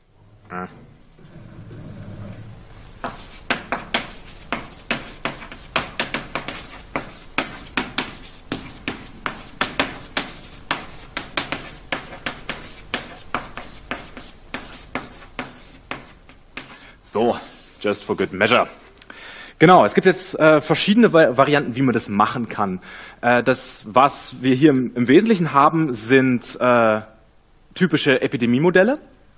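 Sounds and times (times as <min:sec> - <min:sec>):
speech: 0:00.5 - 0:00.9, 0:17.8 - 0:18.8, 0:19.6 - 0:27.1, 0:27.7 - 0:29.2
handwriting a title with scratchy strokes: 0:03.0 - 0:16.8.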